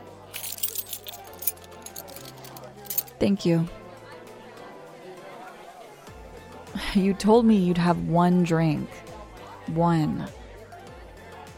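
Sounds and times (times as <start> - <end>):
metal keys jangling as they are handed over: 0.3 - 3.2
speech: 3.2 - 3.8, 6.9 - 9.0, 9.7 - 10.4.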